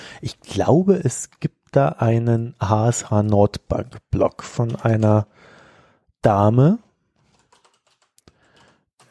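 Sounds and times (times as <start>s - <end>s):
speech: 0.2s - 5.5s, 6.2s - 6.8s
rapid typing on a computer keyboard: 7.2s - 9.1s.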